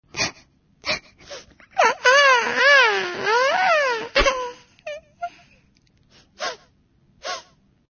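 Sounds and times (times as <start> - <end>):
baby crying: 1.8 - 5.4.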